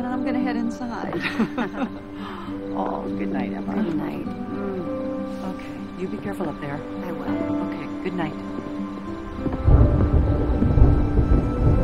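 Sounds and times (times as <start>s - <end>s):
faint hiss of rain: 0.0s - 11.8s
speech: 0.5s - 4.4s, 5.3s - 8.6s
laughter: 1.1s - 2.2s
low rolling thunder in a thunderstorm: 7.4s - 11.8s.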